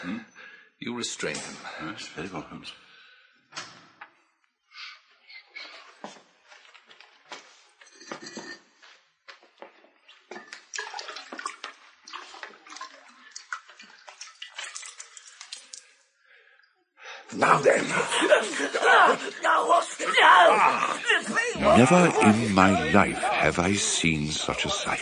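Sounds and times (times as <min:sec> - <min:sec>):
speech: 0:00.0 - 0:02.9, 0:17.4 - 0:25.0
water splashing and trickling from a jug: 0:10.3 - 0:16.1
laughter: 0:17.3 - 0:25.0.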